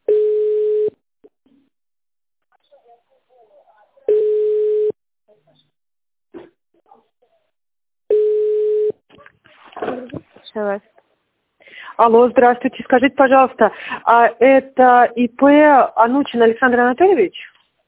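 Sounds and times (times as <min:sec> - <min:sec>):
telephone ringback tone while a call is being placed: 0:00.1 - 0:00.9, 0:04.1 - 0:05.0, 0:08.1 - 0:09.0
speech: 0:10.6 - 0:10.9, 0:12.0 - 0:17.5.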